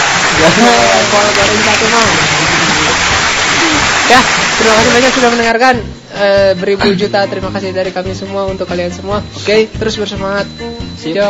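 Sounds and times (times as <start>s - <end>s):
applause from many hands clapping: 0.0s - 5.5s
speech: 0.4s - 3.0s, 4.1s - 11.2s
people talking and calling out: 0.4s - 11.2s.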